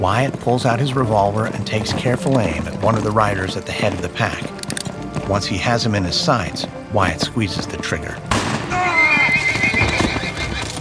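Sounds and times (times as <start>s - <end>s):
speech: 0.0s - 4.6s, 5.3s - 8.3s
fast hoofbeats of horses galloping down a road: 0.0s - 10.7s
horses whinnying: 8.6s - 10.7s.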